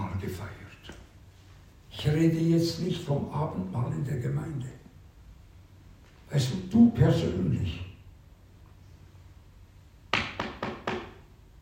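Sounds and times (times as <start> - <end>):
hiss: 0.0 - 11.5
speech: 2.0 - 4.8, 6.3 - 7.9
knocking on a door: 10.1 - 11.2.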